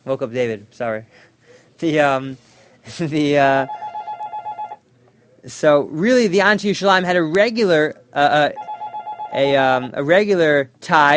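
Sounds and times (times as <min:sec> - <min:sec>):
speech: 0:00.0 - 0:03.8, 0:05.4 - 0:08.7, 0:09.3 - 0:11.1
electronic phone ring: 0:03.6 - 0:04.8, 0:08.4 - 0:09.9.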